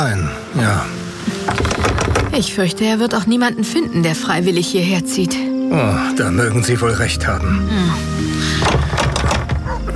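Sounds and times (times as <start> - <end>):
speech: 0.0 - 8.8
knocking on the wooden door of a run-down isolated house: 8.6 - 9.8.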